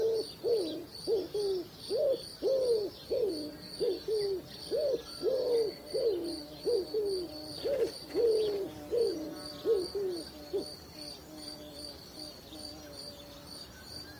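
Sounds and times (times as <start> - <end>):
wood pigeon cooing in soft hooted notes: 0.0 - 13.4.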